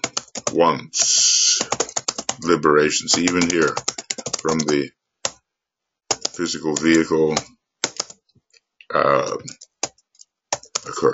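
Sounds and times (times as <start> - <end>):
clumsy typing on a computer keyboard: 0.0 - 0.6, 1.3 - 2.5, 3.1 - 5.4, 6.1 - 8.2, 9.3 - 11.1
speech: 0.6 - 1.3, 2.4 - 5.0, 6.4 - 7.6, 8.9 - 9.6, 10.8 - 11.1.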